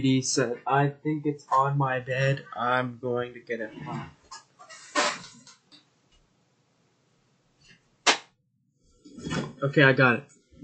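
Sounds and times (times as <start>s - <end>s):
speech: 0.0s - 4.2s, 9.6s - 10.6s
hand slapping a hard plastic game console: 8.1s - 8.3s.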